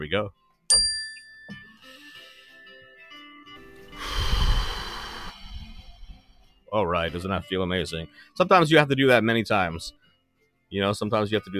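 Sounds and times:
speech: 0.0 - 1.0, 6.7 - 10.0, 10.7 - 11.5
mindfulness bell ringing: 0.7 - 1.8
loud breathy exhale: 3.9 - 6.4.

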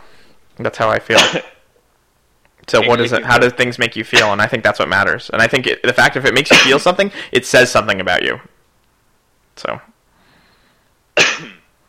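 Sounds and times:
speech: 0.6 - 1.5, 2.7 - 8.5, 9.6 - 9.9
sharp cough after swallowing water the wrong way: 1.1 - 1.6, 4.2 - 4.4, 6.5 - 6.8, 11.2 - 11.7.

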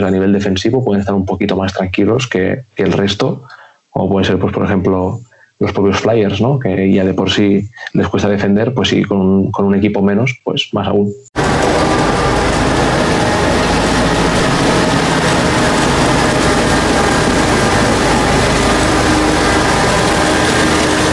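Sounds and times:
speech: 0.0 - 12.0
ice resurfacer engine running at a hockey rink: 11.4 - 21.1.

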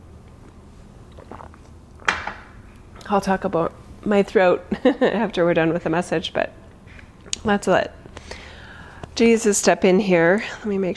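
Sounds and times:
slurping sip of tea: 1.1 - 1.7
speech: 3.1 - 6.6, 7.4 - 8.0, 9.2 - 10.9.

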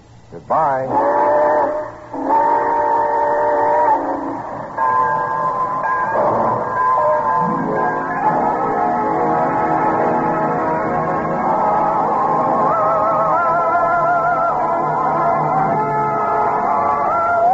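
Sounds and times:
speech: 0.3 - 1.3
steam train whistle as the train departs: 0.9 - 17.5.

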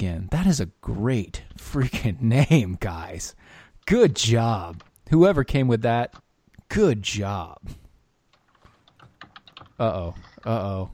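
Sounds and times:
speech: 0.1 - 7.8, 9.8 - 10.9
typing on a computer keyboard: 8.3 - 10.7.

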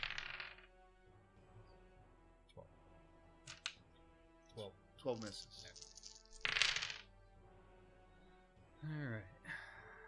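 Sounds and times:
dice rolled across a tabletop during a game: 0.0 - 0.7, 3.4 - 3.8, 5.2 - 7.1
speech: 4.6 - 5.8, 8.8 - 9.4.

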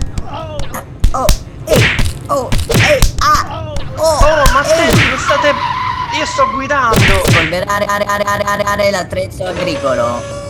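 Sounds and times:
punches and heavy thuds on a person inside a vehicle: 0.0 - 5.3, 6.9 - 7.6
speech: 1.2 - 1.4, 6.4 - 10.4.

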